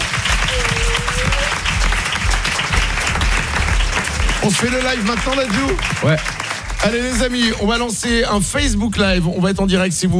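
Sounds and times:
audience applauding a live performer: 0.0s - 8.0s
speech: 4.4s - 10.1s.

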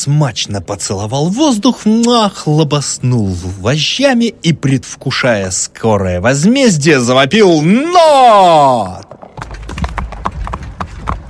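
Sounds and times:
speech: 0.0s - 9.1s
horse hooves clip-clopping on a road: 9.0s - 11.2s
carriage wheels rumbling on outskirt streets: 9.1s - 11.2s.

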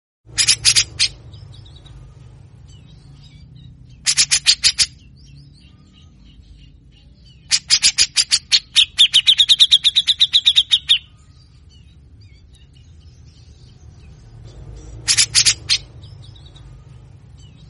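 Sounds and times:
Grey-cheeked Bulbul singing harsh scratchy notes: 0.3s - 17.6s
soft background twittering: 0.3s - 17.6s.

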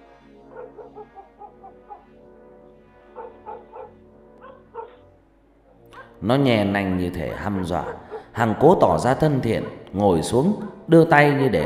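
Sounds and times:
stray dog barking fiercely: 0.5s - 2.2s, 3.1s - 5.0s, 6.0s - 6.2s, 7.3s - 8.4s
speech: 6.2s - 11.6s.

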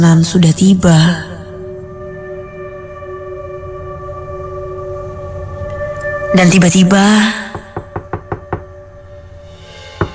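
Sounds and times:
speech: 0.0s - 1.3s, 6.3s - 7.6s
knuckles knocking on an apartment door: 7.5s - 8.7s.

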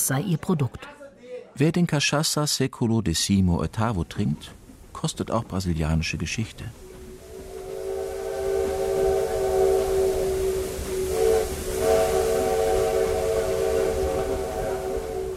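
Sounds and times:
speech: 0.1s - 1.0s, 1.6s - 6.8s
low rumble of a small tourist train on the rails: 4.1s - 15.3s
hissing steam of a small tourist train: 4.4s - 15.3s
small tourist train steam whistle: 6.8s - 15.3s.

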